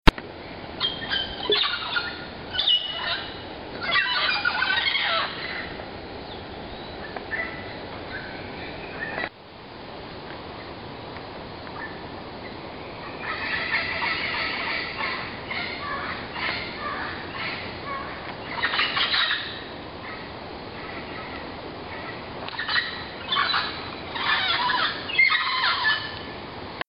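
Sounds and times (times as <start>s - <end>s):
toucan calling: 0.6s - 9.3s, 11.7s - 26.4s.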